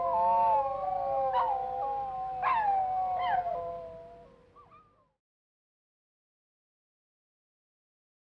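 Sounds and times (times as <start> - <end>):
wolves howling in a chorus: 0.0 - 4.3.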